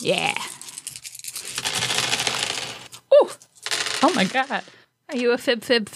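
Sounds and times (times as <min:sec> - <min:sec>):
speech: 0:00.0 - 0:00.5, 0:04.0 - 0:05.9
handful of eleven dice rolled in a game: 0:00.5 - 0:04.8.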